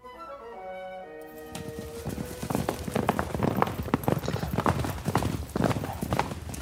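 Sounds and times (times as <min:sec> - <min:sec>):
two horses' hooves clip-clopping at a walk: 0:01.2 - 0:06.6.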